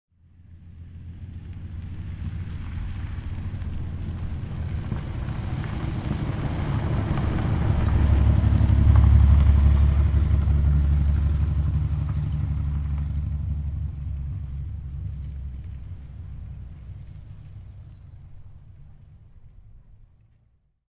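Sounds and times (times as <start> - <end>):
Ford Falcon engine at Laprade and Macia streets in Santo Tome: 0.2 - 19.8.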